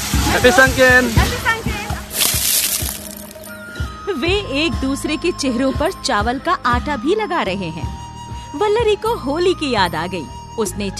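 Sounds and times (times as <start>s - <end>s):
water splashing as people pour bucketfuls over one another at a festive celebration: 0.0s - 3.6s
speech: 0.4s - 1.4s, 4.1s - 10.9s.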